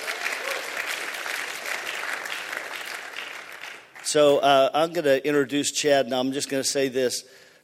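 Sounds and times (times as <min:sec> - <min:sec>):
audience cheering and clapping: 0:00.0 - 0:04.2
speech: 0:04.1 - 0:07.6.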